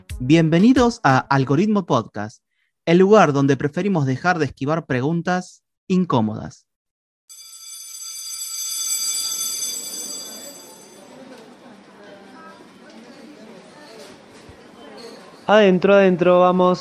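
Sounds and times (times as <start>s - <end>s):
speech: 0.2s - 6.7s, 15.5s - 16.8s
electric school bell ringing for end of recess: 7.3s - 11.6s
noisy chatter of a crowd of children: 9.9s - 15.4s.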